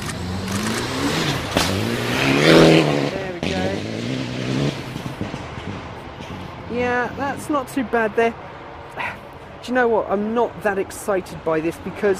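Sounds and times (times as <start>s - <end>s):
rally car engine revving as it accelerates through a bend on a slippery course: 0.0s - 7.6s
speech: 6.9s - 8.4s, 9.6s - 12.1s.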